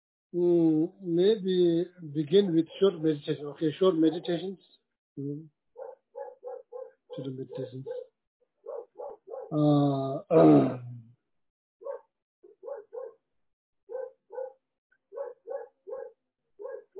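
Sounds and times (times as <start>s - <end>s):
speech: 0.3s - 5.6s, 7.2s - 8.1s, 9.5s - 11.0s
dog barking outside: 5.8s - 9.5s, 11.8s - 13.2s, 13.9s - 16.9s.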